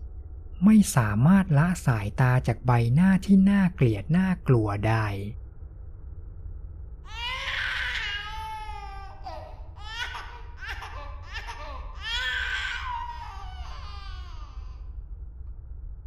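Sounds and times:
low steady hum: 0:00.0 - 0:16.0
speech: 0:00.6 - 0:05.4
baby crying in loud strained wails: 0:07.1 - 0:14.9.

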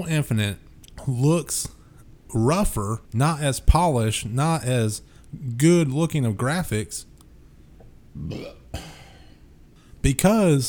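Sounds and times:
speech: 0:00.0 - 0:07.1, 0:08.2 - 0:09.0, 0:10.0 - 0:10.6
man burping: 0:08.2 - 0:09.4.

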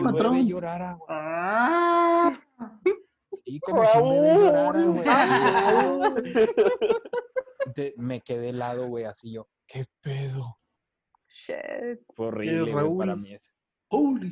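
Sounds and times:
speech: 0:00.0 - 0:02.5, 0:03.5 - 0:10.6, 0:11.3 - 0:14.3
excited talking: 0:00.0 - 0:10.5, 0:11.5 - 0:13.4
person imitating a distressed cat's cry: 0:03.7 - 0:06.8
laughter: 0:04.8 - 0:08.0.

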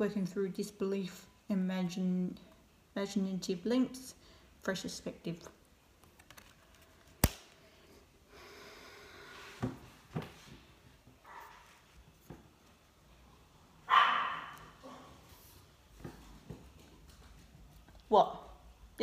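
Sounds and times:
speech: 0:00.0 - 0:05.6
dog barking with sharp yaps: 0:13.9 - 0:15.2.

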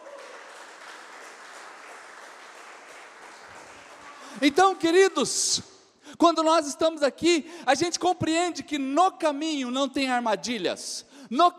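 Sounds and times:
large audience applauding: 0:00.0 - 0:05.1
speech: 0:04.4 - 0:11.5.

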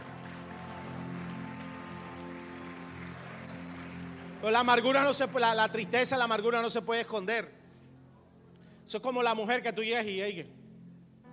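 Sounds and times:
crowd applauding: 0:00.0 - 0:06.2
speech: 0:04.4 - 0:07.6, 0:08.9 - 0:10.6.

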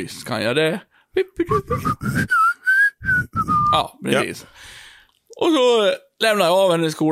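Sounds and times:
speech: 0:00.0 - 0:04.8, 0:05.4 - 0:07.0
person whistling a short lively tune: 0:01.5 - 0:03.9.

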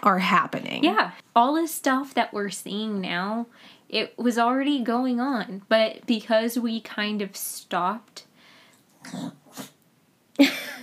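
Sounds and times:
speech: 0:00.0 - 0:08.3, 0:09.0 - 0:09.7, 0:10.4 - 0:10.8
dog making breathy vocal bursts in a room: 0:09.0 - 0:09.8.

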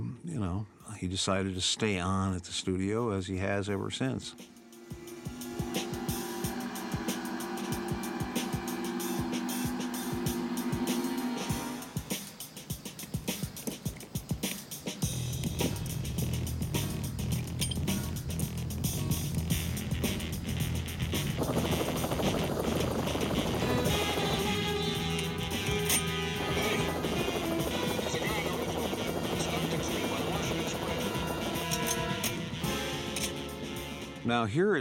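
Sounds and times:
speech: 0:00.4 - 0:04.6, 0:34.4 - 0:34.8
police patrol helicopter flying overhead: 0:04.4 - 0:34.2.

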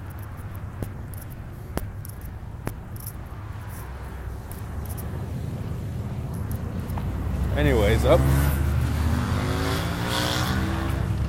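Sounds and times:
traffic noise: 0:00.0 - 0:11.2
loud motorcycle roaring past on a street: 0:04.8 - 0:11.2
speech: 0:07.6 - 0:08.4.

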